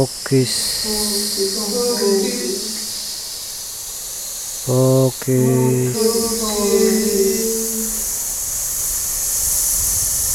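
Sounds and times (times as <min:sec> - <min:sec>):
speech: 0:00.0 - 0:02.8, 0:04.7 - 0:08.0
person humming sustained tones: 0:00.0 - 0:03.0, 0:04.7 - 0:08.1
steady bright hiss: 0:00.0 - 0:10.3.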